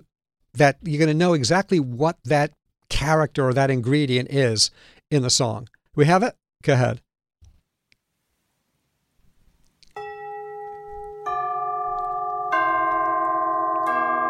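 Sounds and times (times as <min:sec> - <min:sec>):
speech: 0:00.6 - 0:07.0
tubular bells struck with metallic ringing: 0:10.0 - 0:14.2.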